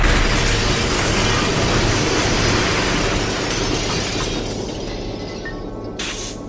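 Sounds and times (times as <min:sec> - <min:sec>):
18-wheeler truck loaded with pine logs crashing through gate into house: 0:00.0 - 0:05.7
debris crunching and shattering: 0:00.0 - 0:06.0.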